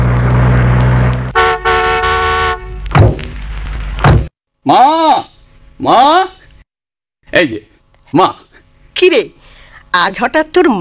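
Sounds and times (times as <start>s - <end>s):
car engine rumble arriving at a house: 0.0s - 4.2s
long slightly broken car horn blast: 1.3s - 2.8s
dull thuds: 2.9s - 4.3s
speech: 4.7s - 5.0s, 5.8s - 6.4s, 7.3s - 8.4s, 9.0s - 10.7s.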